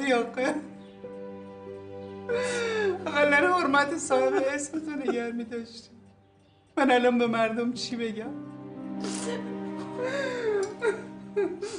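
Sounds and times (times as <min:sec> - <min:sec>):
speech: 0:00.1 - 0:00.7, 0:02.3 - 0:06.0, 0:06.8 - 0:11.7
person crying and whimpering with sobs and gasps: 0:09.0 - 0:11.7.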